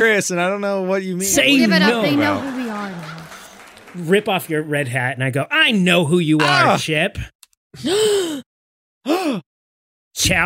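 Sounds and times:
speech: 0.0 - 3.2, 3.9 - 8.4, 10.2 - 10.4
laughter: 1.2 - 4.8
sharp breathy gasp of surprise: 7.8 - 9.5.

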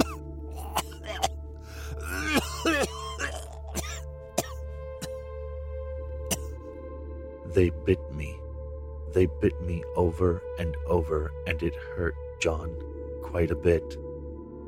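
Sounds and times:
person coughing up blood with raspy gurgling sounds: 0.0 - 5.2, 6.3 - 6.6
speech: 7.6 - 8.3, 9.2 - 14.0.

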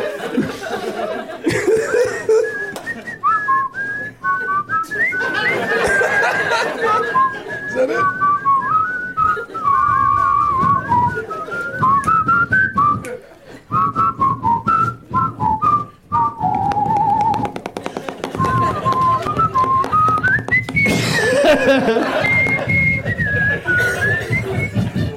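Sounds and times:
laughter: 0.0 - 12.1, 12.8 - 14.1, 17.6 - 25.1
person whistling a wandering melody: 2.2 - 25.1.

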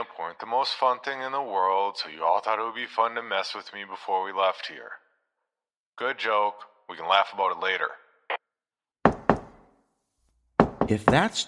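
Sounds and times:
speech: 0.0 - 5.0, 6.0 - 8.0, 10.9 - 11.4
knocks on a hard surface: 9.1 - 9.6, 10.6 - 11.4.

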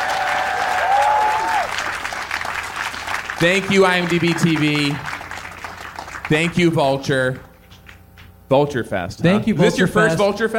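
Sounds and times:
live audience applause: 0.0 - 6.6
speech: 3.4 - 5.1, 6.3 - 7.5, 8.5 - 10.5.

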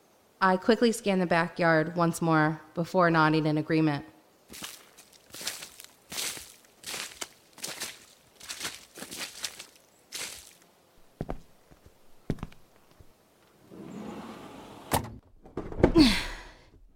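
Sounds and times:
speech: 0.4 - 4.7
footsteps walking inside a house: 4.5 - 13.5
heavy shelf scraping as it is pushed: 13.6 - 14.9
glass door shutting with sharp thuds: 13.7 - 16.1.

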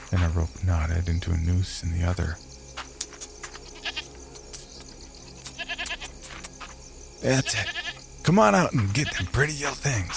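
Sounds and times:
speech: 0.1 - 2.5, 7.2 - 10.1
female goat bleating: 3.8 - 4.0, 5.4 - 6.1, 7.4 - 8.0.

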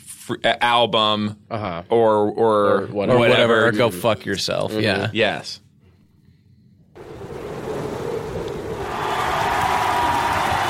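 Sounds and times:
speech: 0.3 - 5.6
large crowd cheering: 8.4 - 10.6
large crowd clapping: 8.8 - 10.6.

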